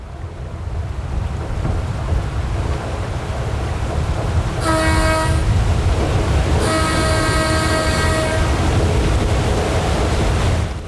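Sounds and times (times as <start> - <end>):
electric passenger ship propeller churning water in Switzerland: 0.3 - 10.8
ship horn blasts: 4.6 - 5.6, 6.6 - 8.7.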